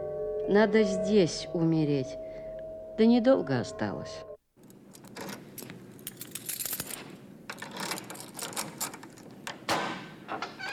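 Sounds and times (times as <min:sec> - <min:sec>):
speech: 0:00.5 - 0:02.2, 0:03.0 - 0:04.3
keys jangling and scraping in a door lock: 0:04.6 - 0:09.6
metallic clicks and clack of a door lock turning: 0:04.6 - 0:10.7.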